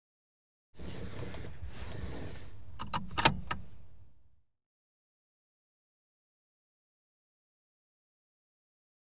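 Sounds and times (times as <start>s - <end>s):
car seatbelt being fastened in car interior: 0.8s - 4.3s.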